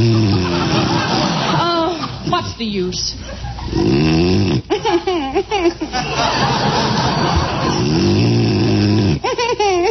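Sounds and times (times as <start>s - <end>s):
man snoring in his sleep: 0.0s - 1.4s, 3.7s - 4.7s, 7.7s - 9.3s
laughter: 0.0s - 2.6s, 3.2s - 3.8s, 4.7s - 8.1s, 9.2s - 9.8s
speech: 2.8s - 8.3s.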